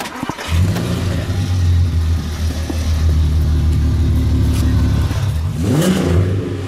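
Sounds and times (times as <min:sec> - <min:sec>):
van engine starting: 0:00.0 - 0:06.6.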